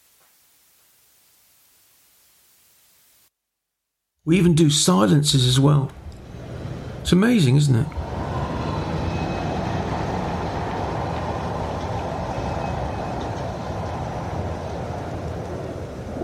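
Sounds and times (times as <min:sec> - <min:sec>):
speech: 0:04.2 - 0:06.0, 0:07.0 - 0:08.0
dense traffic roar: 0:04.3 - 0:16.2.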